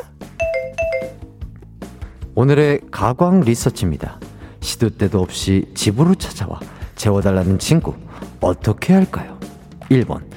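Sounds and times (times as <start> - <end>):
two-tone ding-dong doorbell chime: 0.4 - 1.2
speech: 2.4 - 9.3, 9.9 - 10.3.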